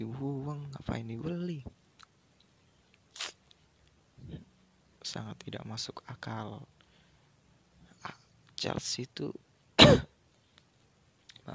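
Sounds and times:
speech: 0.0s - 1.8s, 5.2s - 6.8s, 8.0s - 10.1s
short harsh cough with throaty clearing: 9.8s - 10.2s.

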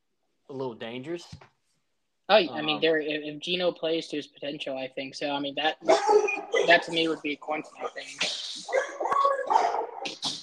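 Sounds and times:
speech: 0.5s - 1.5s, 2.3s - 10.4s
dogs barking and yipping: 5.8s - 7.0s, 8.6s - 10.1s.

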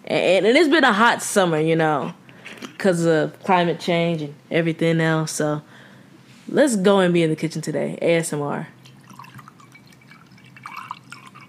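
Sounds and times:
speech: 0.1s - 2.2s, 2.8s - 5.7s, 6.5s - 8.8s
liquid pouring into a glass in a kitchen: 8.8s - 11.4s.

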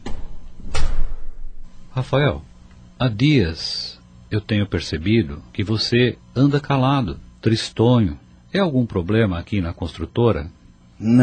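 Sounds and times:
office door pushed shut with a thud and rattle: 0.0s - 1.5s
speech: 2.0s - 11.2s.

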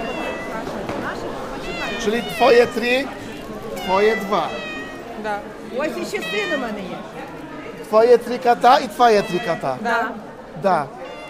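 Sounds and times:
kitten in a little basket meowing in high wavering cries: 0.0s - 0.7s, 1.5s - 6.9s, 9.2s - 9.8s, 11.0s - 11.2s
speech: 2.0s - 3.3s, 3.9s - 11.0s.

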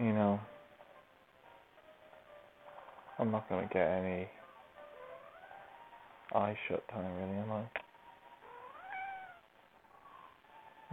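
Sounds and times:
speech: 3.2s - 4.4s, 6.3s - 7.8s
cat meowing: 8.4s - 9.5s.

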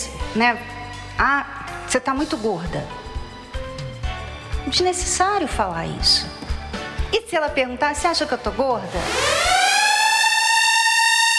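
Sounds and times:
speech: 0.4s - 3.0s, 4.7s - 6.4s, 7.1s - 9.5s
alarm siren wailing: 8.9s - 11.3s.

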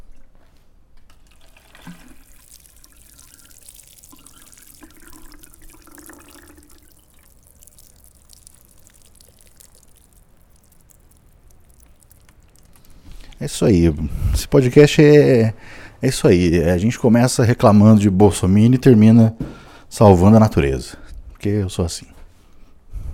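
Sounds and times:
stream of water pouring and splashing: 1.2s - 13.4s
speech: 13.4s - 22.2s.

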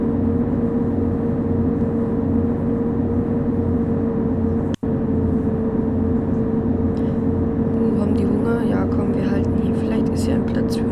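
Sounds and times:
simulated bus engine accelerating at full throttle on a straight road: 0.0s - 10.8s.

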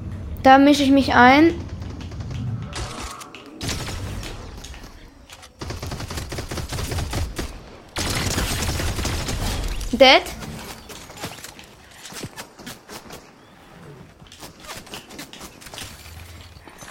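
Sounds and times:
speech: 0.4s - 1.7s, 10.0s - 10.4s
video game gunfire in rapid bursts: 1.4s - 4.6s, 5.6s - 13.4s.

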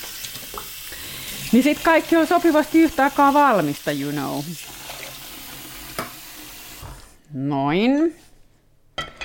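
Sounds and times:
water poured into a cooking pot for quinoa: 0.0s - 7.0s
speech: 1.5s - 4.7s, 7.3s - 8.2s.

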